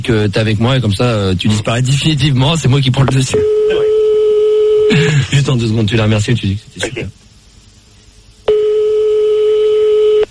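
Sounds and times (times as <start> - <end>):
speech: 0.0 - 3.9, 4.9 - 7.1
ringing tone of an outgoing phone call: 3.4 - 4.9, 8.5 - 10.3.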